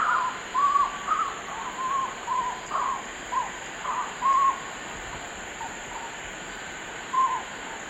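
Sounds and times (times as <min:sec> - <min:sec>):
collared puffbird singing in eastern lowlands of South America: 0:00.0 - 0:04.7, 0:07.1 - 0:07.5
background hiss: 0:00.0 - 0:07.8.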